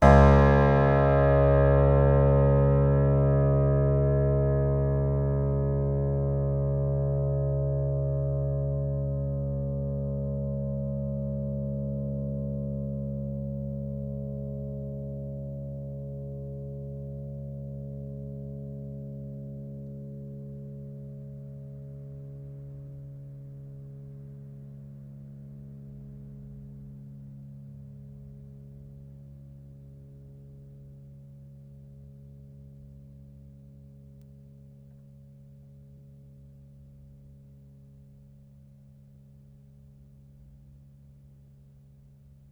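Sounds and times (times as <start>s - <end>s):
piano string pluck: 0.0s - 15.0s.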